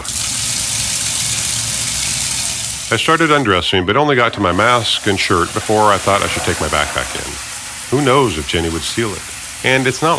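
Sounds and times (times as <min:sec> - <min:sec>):
shower water running: 0:00.0 - 0:10.1
speech: 0:02.9 - 0:10.1.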